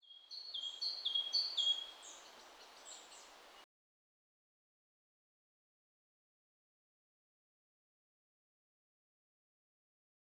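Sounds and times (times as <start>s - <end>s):
birds outside in Europe: 0.0s - 3.6s.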